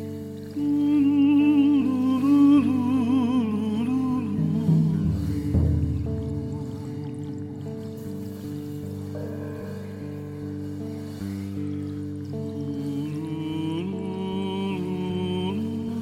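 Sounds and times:
person singing a Zuni lullaby: 0.5s - 7.9s, 11.9s - 16.0s.

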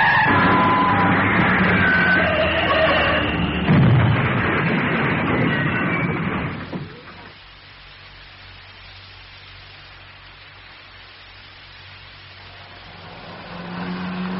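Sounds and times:
worn-out car skidding with squealing tyres: 0.0s - 3.6s
worn-out car crashing with metallic impacts and rumbling debris: 0.0s - 7.3s.

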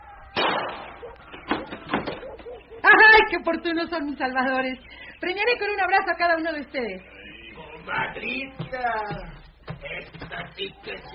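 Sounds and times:
door being opened in a rough little house: 0.3s - 2.4s
speech: 3.3s - 7.1s, 7.9s - 9.4s, 10.6s - 11.1s.

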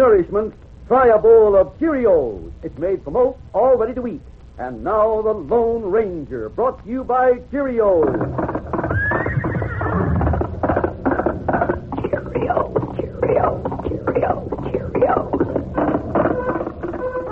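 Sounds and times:
speech: 0.0s - 8.5s
galloping horse hoofbeats: 7.8s - 17.2s
horse whinnying: 8.1s - 11.9s.

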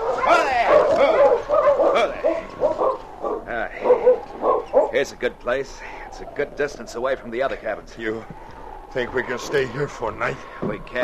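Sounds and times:
sled dog team barking, yipping and whimpering beside a small cabin on a snowy evening: 0.0s - 5.0s
speech: 5.0s - 11.0s.

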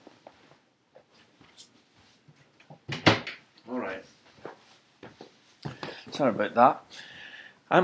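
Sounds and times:
faint shuffling and small handling noises: 0.0s - 2.8s, 3.6s - 6.3s
door pushed shut with a thud: 2.9s - 3.4s
speech: 6.2s - 7.1s.

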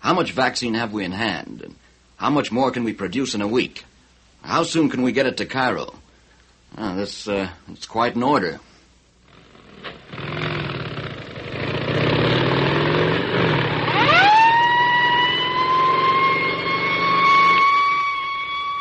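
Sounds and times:
speech: 0.1s - 6.0s, 6.7s - 8.7s
motorcycle police escort engines rumbling: 9.3s - 18.2s
convoy vehicle roar passing: 9.6s - 18.0s
motorcycle police escort sirens wailing in New York 1947: 13.6s - 18.8s.

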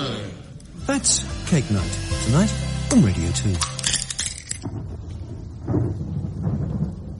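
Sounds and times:
speech: 0.9s - 3.8s
rolling thunder in a thunderstorm: 4.6s - 7.1s.

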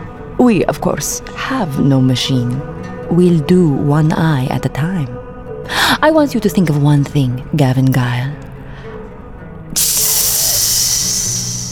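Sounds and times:
speech: 0.4s - 8.4s
hot iron steaming hiss: 9.8s - 11.7s.

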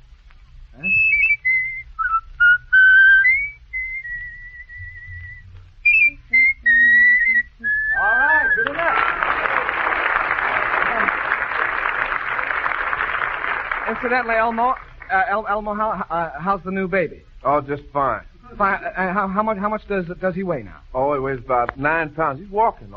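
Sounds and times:
man whistling a bright lilting tune: 0.8s - 8.9s
audience applause: 8.5s - 15.1s
speech: 14.1s - 22.9s.

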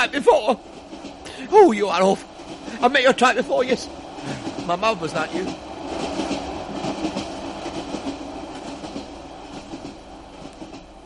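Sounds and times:
speech: 0.0s - 0.8s, 1.4s - 6.2s
train rumbling along railway tracks: 0.0s - 11.0s
train wheels clacking over rail joints: 0.0s - 11.0s.

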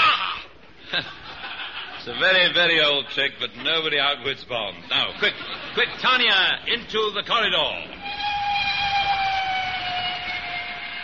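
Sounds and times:
laughter: 0.8s - 3.0s, 4.9s - 6.5s
speech: 0.9s - 1.2s, 2.0s - 8.0s
high droning whine of a train: 8.0s - 11.0s
train running on rails: 8.0s - 11.0s.

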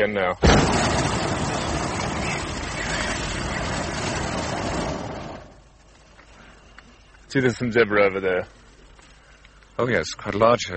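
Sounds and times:
speech: 0.0s - 1.4s, 7.3s - 8.6s, 9.8s - 10.7s
hot air balloon gas burner firing: 0.4s - 5.8s.

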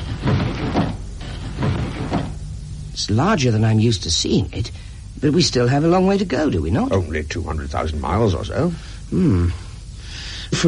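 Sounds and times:
window blinds being opened: 0.0s - 2.4s
speech: 3.0s - 9.6s.

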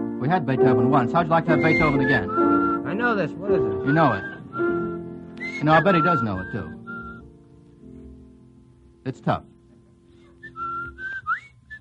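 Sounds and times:
speech: 0.3s - 2.4s, 3.0s - 4.4s, 5.6s - 6.8s, 9.0s - 9.5s
person whistling a melody: 1.5s - 3.0s, 3.8s - 7.3s, 10.4s - 11.8s.

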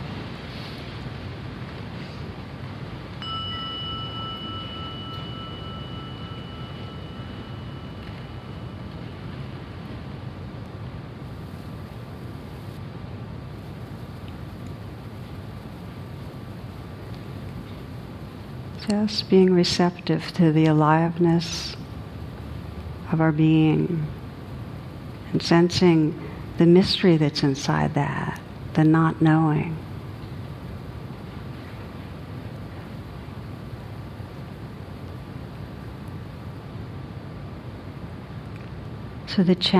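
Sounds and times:
soft rushing noise: 0.0s - 39.7s
meditation gong struck and resonating: 3.2s - 9.6s
speech: 18.9s - 21.8s, 23.1s - 24.2s, 25.3s - 29.8s, 39.4s - 39.7s.

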